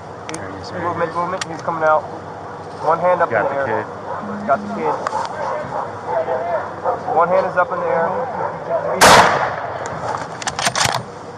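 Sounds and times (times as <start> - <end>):
speech: 0.3 - 9.6
gunshot fired by police at a suspect: 9.0 - 9.8.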